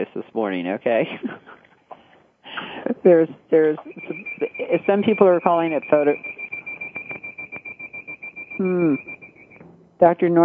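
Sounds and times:
speech: 0:00.0 - 0:01.5, 0:02.6 - 0:06.3, 0:08.6 - 0:09.1, 0:10.0 - 0:10.4
home alarm system high-pitched electronic tone: 0:03.8 - 0:09.7.

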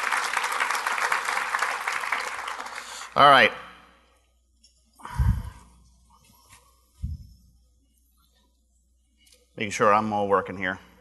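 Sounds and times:
sizable audience applause: 0:00.0 - 0:03.1
speech: 0:03.2 - 0:03.6, 0:09.6 - 0:10.9.

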